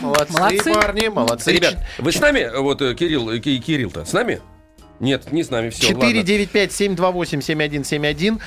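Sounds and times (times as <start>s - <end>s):
scattered hand claps: 0.0s - 2.1s
speech: 0.2s - 8.4s.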